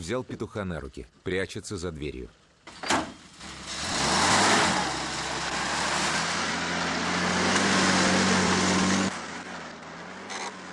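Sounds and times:
speech: 0.0s - 2.4s
car engine revving as the vehicle drives off: 3.2s - 10.7s.

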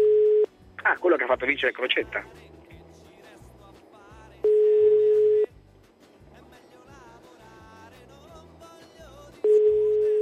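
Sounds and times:
telephone busy signal on a call line: 0.0s - 0.5s, 4.4s - 5.5s, 9.4s - 10.2s
faint music: 0.0s - 10.2s
speech: 1.0s - 2.5s.

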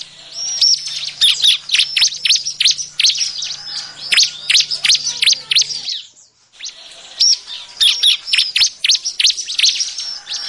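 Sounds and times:
bar-winged prinia calling with rapid high chirps and squeaks: 0.0s - 10.4s.

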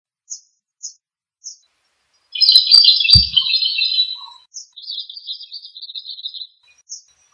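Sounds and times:
bird chirping and twittering in Indonesia: 2.2s - 7.3s
low thump: 3.2s - 3.5s.

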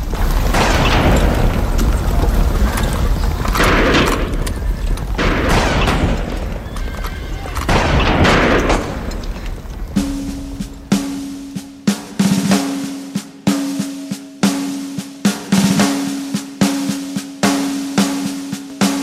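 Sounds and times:
horses whinnying: 0.0s - 11.6s
rifle shots fired on a country road in wartime: 0.0s - 12.9s
hooves clattering: 0.0s - 19.0s.

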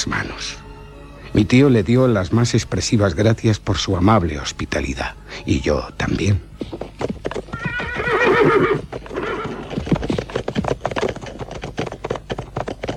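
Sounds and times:
speech: 1.4s - 7.2s
horse hooves clip-clopping: 5.8s - 12.9s
horse whinnying: 7.3s - 11.5s.

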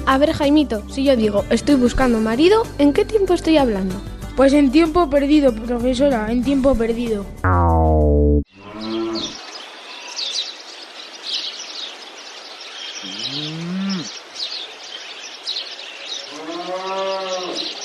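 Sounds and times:
speech: 0.1s - 8.4s
birds chirping: 7.7s - 17.8s
cow mooing while walking in a meadow: 8.6s - 9.4s, 13.1s - 14.1s, 16.3s - 17.7s.

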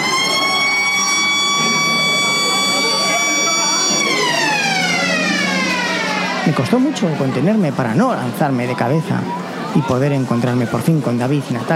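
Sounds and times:
school siren signalling recess: 0.0s - 9.7s
noisy background: 0.0s - 11.7s
speech: 6.6s - 11.7s.

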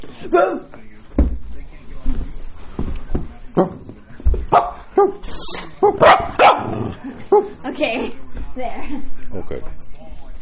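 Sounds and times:
speech: 0.2s - 0.8s, 3.6s - 3.8s, 5.8s - 6.2s, 7.8s - 9.8s
dog barking: 4.5s - 5.2s, 5.8s - 7.5s.

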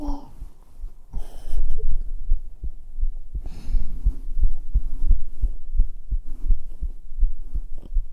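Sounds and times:
soft hum: 0.0s - 8.1s
strong heartbeat recorded against bare skin with a binaural microphone: 0.0s - 8.1s.

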